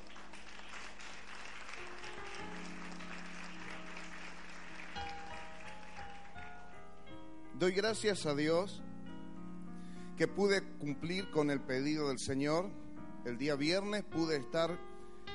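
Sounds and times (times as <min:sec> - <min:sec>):
audience applauding loudly: 0:00.0 - 0:06.8
speech: 0:07.6 - 0:08.9, 0:10.2 - 0:14.9.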